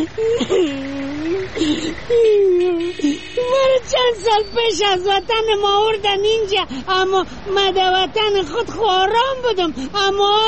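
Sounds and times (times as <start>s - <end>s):
person crying and whimpering: 0.0s - 3.7s
speech: 0.0s - 10.4s.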